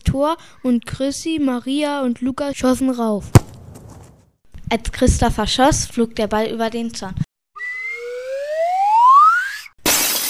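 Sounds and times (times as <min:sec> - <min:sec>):
speech: 0:00.1 - 0:03.5, 0:04.7 - 0:07.3
rising whistling tone: 0:07.6 - 0:09.7
car window glass shattering: 0:09.8 - 0:10.2.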